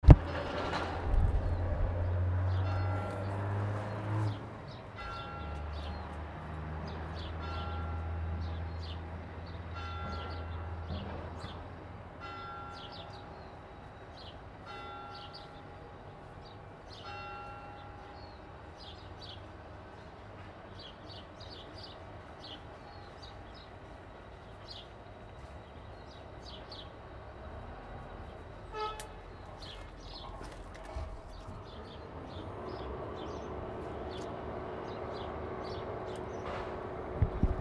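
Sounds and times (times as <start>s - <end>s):
birds: 0.1s - 37.5s
bells ringing: 2.6s - 4.3s, 5.0s - 6.1s, 9.7s - 11.4s, 12.2s - 19.0s.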